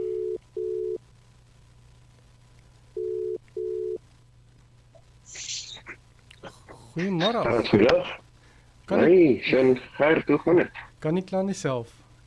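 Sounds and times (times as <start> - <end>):
telephone ringback tone of an outgoing call: 3.0 - 4.0
burst of telephone line noise: 5.3 - 6.0
speech: 7.0 - 8.2, 8.9 - 12.0.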